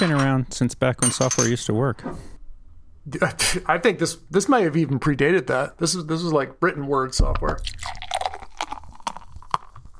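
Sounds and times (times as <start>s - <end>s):
speech: 0.0s - 2.3s, 3.0s - 8.0s
beer being poured into a glass: 7.5s - 9.8s.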